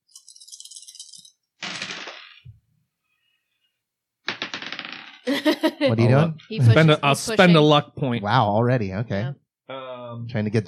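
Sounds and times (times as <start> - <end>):
dice rattling and clattering across a hard surface: 0.1 - 2.5, 4.3 - 5.2
laughter: 5.3 - 7.0
speech: 5.3 - 9.4, 10.2 - 10.6.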